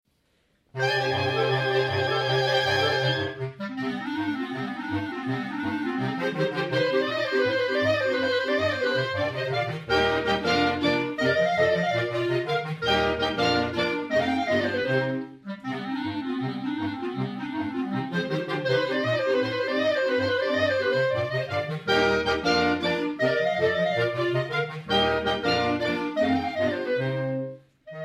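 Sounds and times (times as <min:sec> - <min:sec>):
clarinet choir playing a concerto: 0:00.8 - 0:28.0.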